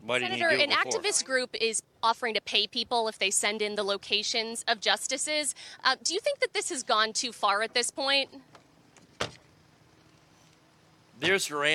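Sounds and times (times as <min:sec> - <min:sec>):
speech: 0:00.1 - 0:08.6, 0:11.2 - 0:11.7
car door being shut: 0:08.5 - 0:09.5.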